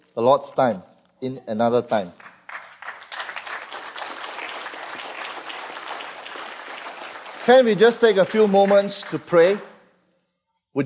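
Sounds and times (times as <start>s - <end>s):
speech: 0.2s - 2.3s, 7.5s - 9.7s
church audience applauding: 2.2s - 9.7s.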